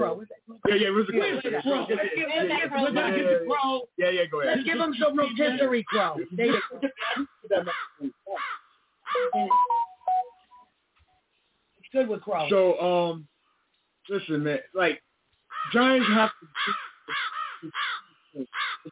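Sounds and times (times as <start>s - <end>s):
speech: 0.0s - 7.8s, 11.9s - 13.3s, 14.1s - 18.9s
crow cawing: 5.9s - 9.3s, 15.5s - 18.9s.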